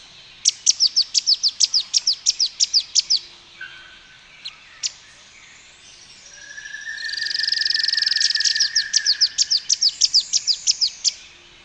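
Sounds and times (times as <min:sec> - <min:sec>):
streak-capped antwren Terenura maculata chipping: 0:00.4 - 0:03.8, 0:06.5 - 0:11.3.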